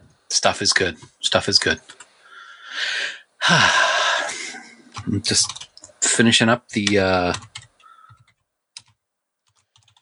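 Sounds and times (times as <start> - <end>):
speech: 0.4 - 2.0, 2.7 - 3.8, 5.1 - 7.5
typing on a computer keyboard: 5.0 - 5.9, 6.8 - 10.0.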